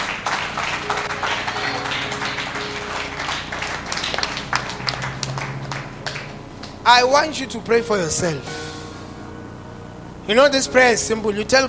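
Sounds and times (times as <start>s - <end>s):
audience clapping hands: 0.0s - 6.9s
steady sustained musical tones humming: 0.2s - 11.6s
speech: 6.9s - 8.6s, 10.3s - 11.6s.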